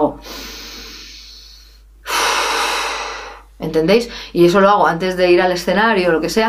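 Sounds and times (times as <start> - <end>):
forceful rush of breath out: 0.2 - 3.5
long airy relaxation inhale: 0.2 - 4.4
speech: 3.7 - 6.4.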